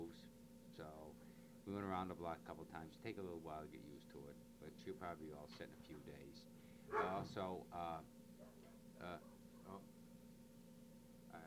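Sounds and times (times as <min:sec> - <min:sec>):
steady low hum: 0:00.0 - 0:11.4
speech: 0:00.1 - 0:08.2, 0:09.0 - 0:09.9
dog barking at a cat: 0:06.9 - 0:07.4, 0:08.4 - 0:09.8.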